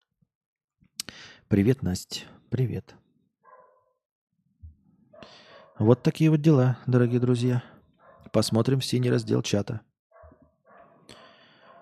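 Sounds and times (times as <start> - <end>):
speech: 1.5 - 3.0, 5.8 - 9.9
dog barking in a village: 3.4 - 4.0, 5.2 - 6.1, 8.0 - 8.4, 10.1 - 11.7.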